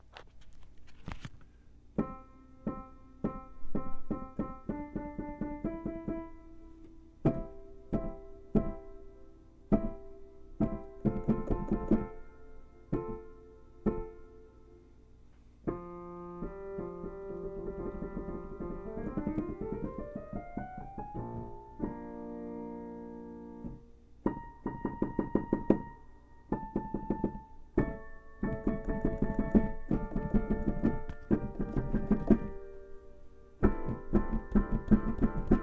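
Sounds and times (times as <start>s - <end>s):
Pianoteq software piano notes: 1.9s - 35.6s.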